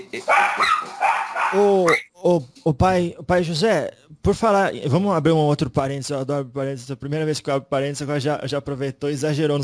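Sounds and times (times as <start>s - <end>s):
speech: 0.0s - 9.6s
dogs barking: 0.2s - 2.1s.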